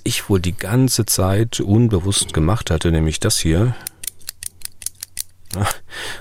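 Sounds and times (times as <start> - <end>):
speech: 0.1 - 3.9, 5.5 - 6.1
ballpoint pen clicking: 3.8 - 5.6.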